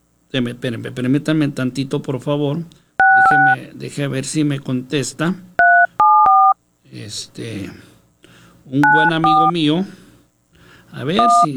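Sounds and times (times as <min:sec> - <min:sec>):
speech: 0:00.3 - 0:05.5, 0:06.9 - 0:07.9, 0:08.7 - 0:10.0, 0:10.9 - 0:11.5
touch-tone keypad dialing a phone number: 0:03.0 - 0:03.6, 0:05.6 - 0:06.6, 0:08.8 - 0:09.5, 0:11.2 - 0:11.5.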